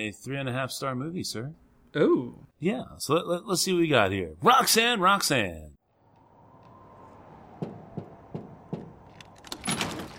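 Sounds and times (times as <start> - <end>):
speech: 0.0 - 5.8
dull thuds: 7.4 - 10.1.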